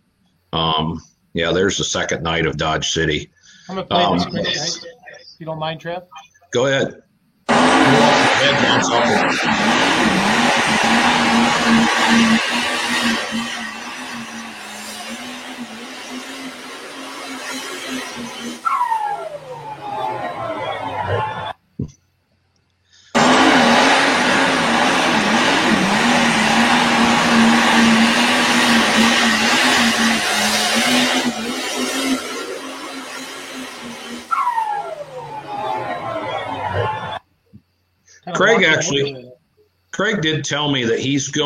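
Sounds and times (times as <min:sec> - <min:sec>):
laughter: 0:00.6 - 0:05.2, 0:07.8 - 0:12.3, 0:38.3 - 0:39.1
speech: 0:00.6 - 0:13.5, 0:38.8 - 0:39.2, 0:40.0 - 0:41.4
diesel pulling tractor engine roaring and straining at Dodge City: 0:03.5 - 0:04.8, 0:07.5 - 0:21.6, 0:23.0 - 0:37.2, 0:38.3 - 0:39.1.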